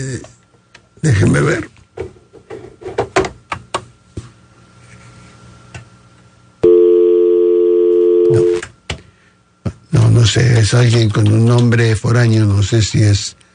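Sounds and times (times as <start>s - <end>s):
speech: 0.0s - 0.4s, 1.0s - 1.7s, 10.2s - 13.4s
phone ringing with a loud steady electronic tone: 6.6s - 8.6s.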